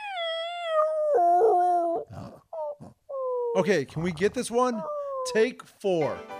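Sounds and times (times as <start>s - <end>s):
small dog howling and whimpering: 0.0s - 3.6s, 4.7s - 5.4s
speech: 3.6s - 6.3s.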